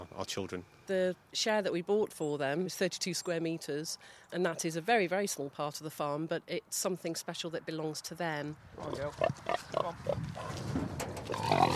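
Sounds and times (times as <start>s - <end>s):
speech: 0.2s - 11.7s
pigs grunting and oinking: 8.8s - 10.6s, 11.2s - 11.7s.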